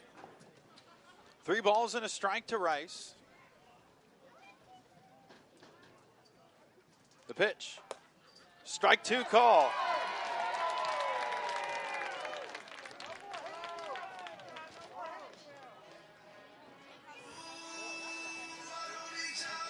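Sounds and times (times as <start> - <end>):
speech: 1.5 - 3.2, 7.4 - 7.9, 8.7 - 10.0
scattered shouts and whoops from a ballpark crowd: 9.4 - 12.5
sparse crowd at a small ballpark applauding and cheering during a night baseball game: 9.5 - 15.1.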